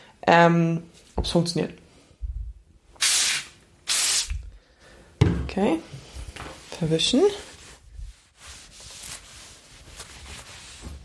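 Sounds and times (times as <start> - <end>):
speech: 0.2 - 1.8, 5.6 - 6.0, 6.8 - 7.5
spray bottle spraying cleaner onto a table: 3.0 - 4.4.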